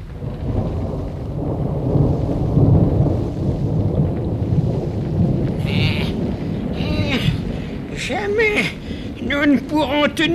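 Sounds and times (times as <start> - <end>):
rain: 0.0 - 10.3
steady heavy thunder rumbling: 0.0 - 10.3
brief bleating animal cries: 5.6 - 6.2
speech: 9.4 - 10.3.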